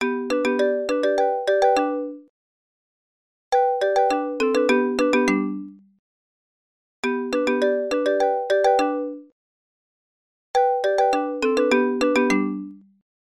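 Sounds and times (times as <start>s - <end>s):
simple marimba ringtone: 0.0s - 2.2s, 3.6s - 5.7s, 7.0s - 9.2s, 10.6s - 12.8s.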